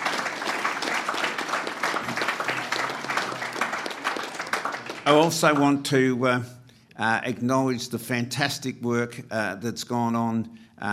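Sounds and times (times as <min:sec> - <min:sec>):
large convention audience applauding: 0:00.0 - 0:05.8
speech: 0:05.0 - 0:10.9.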